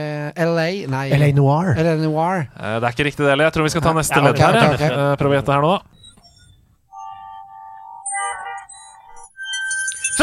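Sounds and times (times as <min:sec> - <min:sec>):
speech: 0:00.0 - 0:05.9
bright chime-like synthetic notes: 0:06.9 - 0:10.2
electronic video game music with synthetic tones: 0:06.9 - 0:10.2.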